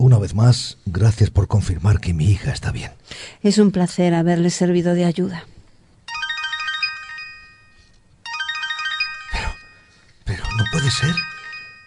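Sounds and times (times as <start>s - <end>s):
speech: 0.2s - 5.6s, 10.9s - 11.3s
phone ringtone for an incoming call: 6.1s - 11.8s.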